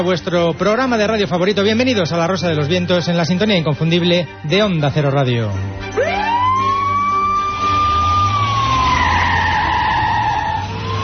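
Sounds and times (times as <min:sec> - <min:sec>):
speech: 0:00.0 - 0:06.1
police siren wailing: 0:05.8 - 0:11.0.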